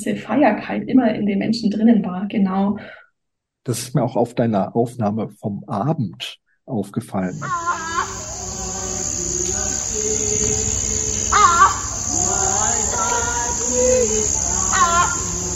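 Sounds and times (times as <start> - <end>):
speech: 0.0 - 3.0, 3.6 - 7.8
tropical crickets chirping: 7.3 - 15.5
faint distant human singing: 7.4 - 15.5.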